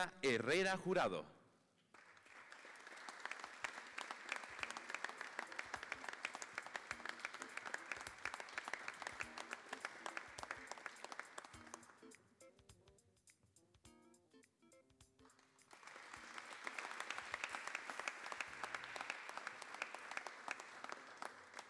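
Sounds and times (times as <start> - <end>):
speech: 0.0 - 1.4
audience applauding at a prize-giving ceremony: 1.9 - 12.0, 15.4 - 21.6.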